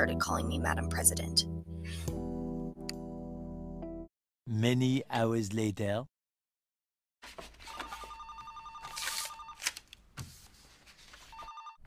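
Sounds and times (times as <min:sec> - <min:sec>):
speech: 0:00.0 - 0:02.2, 0:04.5 - 0:06.1, 0:07.2 - 0:07.6
personal phone of the President of the United States ringing with electronic trill: 0:07.7 - 0:09.6, 0:11.3 - 0:11.8.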